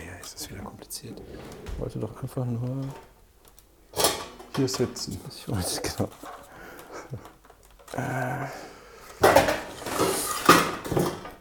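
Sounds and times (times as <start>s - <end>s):
speech: 0.3s - 3.1s, 4.6s - 6.4s, 7.1s - 8.7s
metal pots clattering in a kitchen drawer: 3.9s - 5.1s, 9.2s - 11.3s
laughter: 6.7s - 7.4s.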